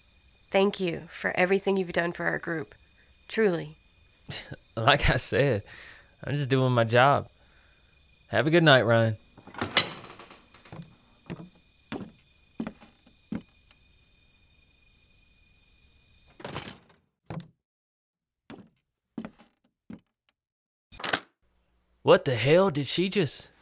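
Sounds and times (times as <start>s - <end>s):
speech: 0.5s - 7.3s, 8.3s - 9.8s, 22.1s - 23.5s
laughter: 4.3s - 5.6s
rattling hiss with small knocks: 8.4s - 13.5s
door being locked with sharp clicks and thunks: 9.4s - 10.8s, 21.0s - 21.3s.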